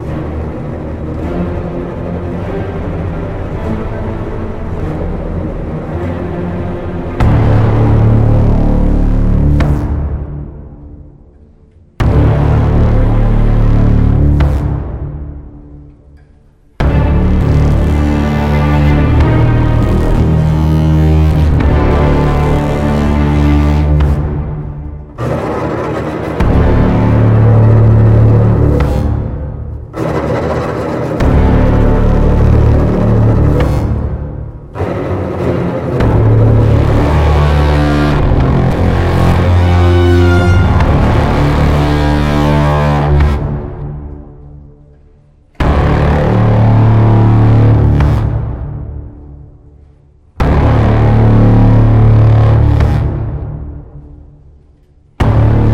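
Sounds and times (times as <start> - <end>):
arena combat game music: 0.0 - 54.6, 55.2 - 55.7.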